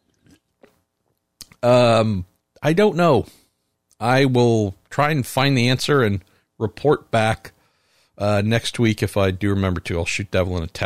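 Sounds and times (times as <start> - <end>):
person sipping a drink: 0.0 - 0.8
speech: 1.6 - 3.4, 4.0 - 7.6, 8.2 - 10.8.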